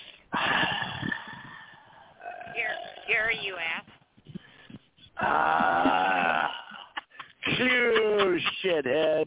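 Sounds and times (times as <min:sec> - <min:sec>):
heavy breathing into a phone microphone: 0:00.4 - 0:02.2, 0:04.2 - 0:05.1
laughter: 0:05.3 - 0:09.2.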